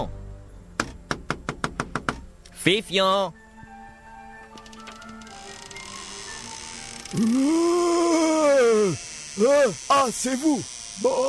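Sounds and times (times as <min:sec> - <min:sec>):
knocking on a door: 0:00.8 - 0:02.2
speech: 0:02.6 - 0:03.4, 0:07.1 - 0:11.2.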